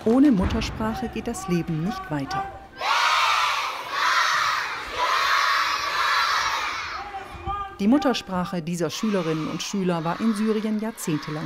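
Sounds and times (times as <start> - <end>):
speech: 0.0 - 2.6, 7.8 - 11.4
schoolchildren chanting a greeting in unison in a primary school yard in Qamishli: 2.8 - 7.0, 9.0 - 11.4.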